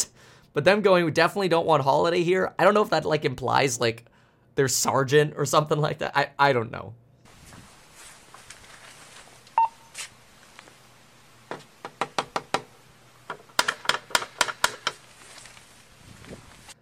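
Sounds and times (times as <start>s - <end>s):
speech: 0.5s - 7.0s
electronic beep: 9.6s - 9.9s
sharp knocking on a hard surface: 11.5s - 15.0s.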